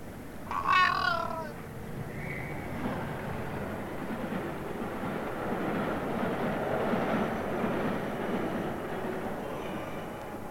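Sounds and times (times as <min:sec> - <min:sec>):
train rumbling past: 0:00.0 - 0:10.4
short high cat-like cry: 0:00.4 - 0:01.6.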